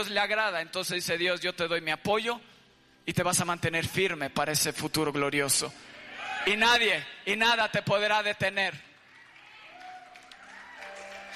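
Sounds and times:
speech: 0:00.0 - 0:08.9
crowd applauding: 0:08.9 - 0:11.3.

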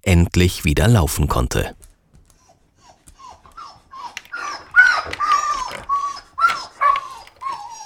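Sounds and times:
speech: 0:00.1 - 0:01.8
female husky dog barking with whiny yipping cries: 0:02.3 - 0:07.8.

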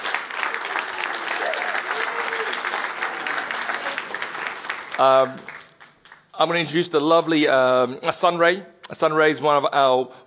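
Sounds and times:
large crowd applauding: 0:00.0 - 0:06.3
brief tonal cheer or shout: 0:00.9 - 0:04.1
speech: 0:05.0 - 0:05.6, 0:06.4 - 0:10.2.

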